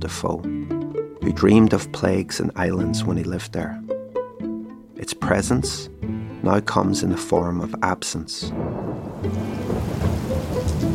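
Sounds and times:
speech: 0.0s - 3.8s, 5.0s - 10.2s
heavy rain falling: 8.5s - 10.9s.

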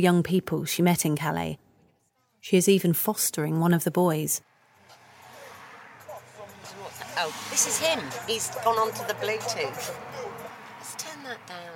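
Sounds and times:
speech: 0.0s - 1.6s, 2.4s - 4.5s, 7.2s - 10.1s
road rumble from inside a moving car: 4.1s - 11.7s.

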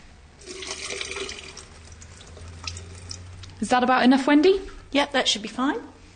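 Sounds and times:
water pouring into a sink with a low gurgle: 0.4s - 3.4s
speech: 3.6s - 5.9s.

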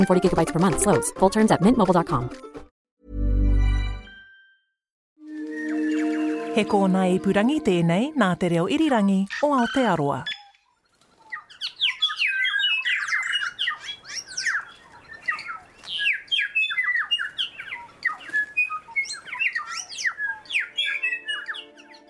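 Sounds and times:
speech: 0.0s - 2.5s, 6.6s - 10.3s
dense continuous chorus of birdsong: 5.4s - 22.0s.

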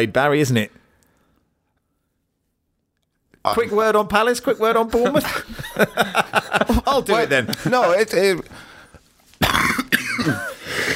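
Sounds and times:
speech: 0.0s - 0.8s, 3.4s - 8.7s, 10.2s - 10.5s
laughter: 4.8s - 8.5s
person coughing: 9.4s - 10.9s.

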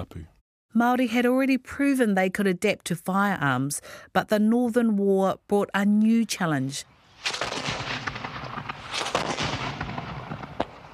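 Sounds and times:
speech: 0.0s - 7.5s
sharp loud crack of an explosion: 7.1s - 10.9s
artillery bombardment with explosive rockets and shells: 7.2s - 10.9s.

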